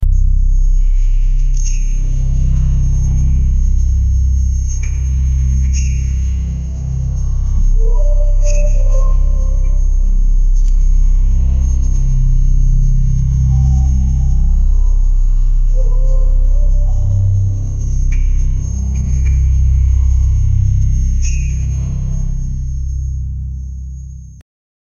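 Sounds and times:
horror ambience: 0:00.0 - 0:23.5.

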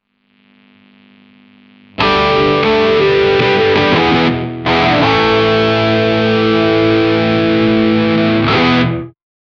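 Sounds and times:
electric guitar breaking: 0:02.0 - 0:09.2.

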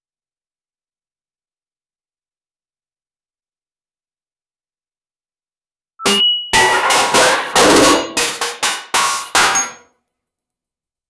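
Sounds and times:
radar beeping: 0:06.0 - 0:07.1
heavy machinery: 0:06.1 - 0:09.8.

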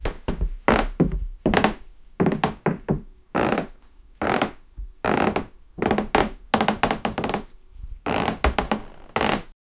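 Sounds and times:
footsteps on a plank in a household: 0:00.0 - 0:09.5.

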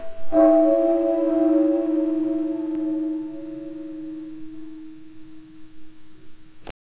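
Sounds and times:
distorted temple bell in a ritual: 0:00.0 - 0:06.7.

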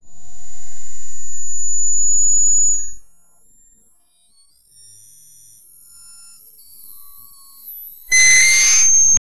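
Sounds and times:
distorted feedback: 0:06.9 - 0:09.2.

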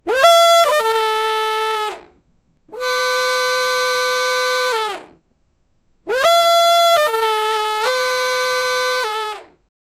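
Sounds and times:
cartoon clown horn: 0:00.0 - 0:01.9, 0:02.7 - 0:05.0, 0:06.1 - 0:09.4.

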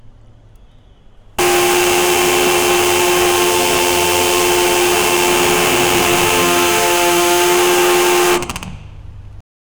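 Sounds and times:
loud Ferrari F40 sports car engine: 0:01.4 - 0:08.6.

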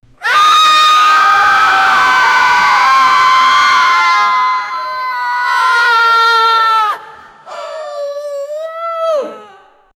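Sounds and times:
horror movie screams: 0:00.2 - 0:07.1.

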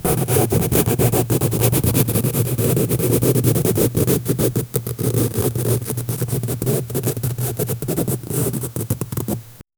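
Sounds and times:
fingernails scratching: 0:00.0 - 0:09.5.

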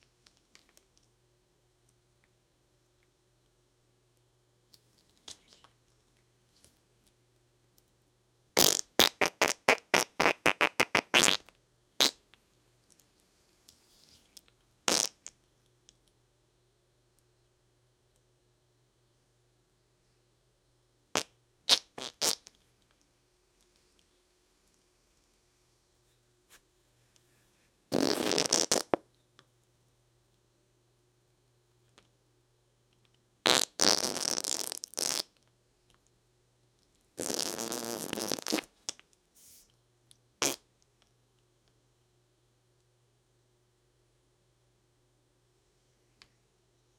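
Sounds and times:
person farting with diarrhea: 0:08.6 - 0:12.2, 0:14.9 - 0:15.3, 0:21.2 - 0:22.5, 0:27.9 - 0:29.0, 0:33.4 - 0:35.3, 0:37.2 - 0:38.8, 0:40.4 - 0:40.6.

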